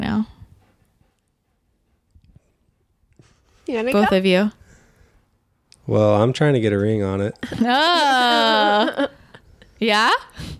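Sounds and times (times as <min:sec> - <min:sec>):
dog panting: 0:00.0 - 0:05.2
speech: 0:03.7 - 0:04.6, 0:05.9 - 0:09.2, 0:09.8 - 0:10.5.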